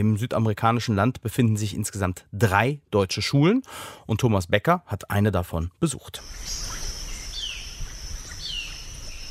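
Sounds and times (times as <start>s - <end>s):
speech: 0.0s - 6.8s
birds chirping outdoors in a schoolyard: 6.2s - 9.2s.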